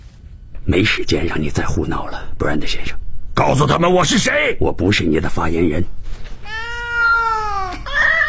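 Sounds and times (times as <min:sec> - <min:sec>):
speech: 0:00.7 - 0:06.3
cat meowing: 0:06.4 - 0:08.2.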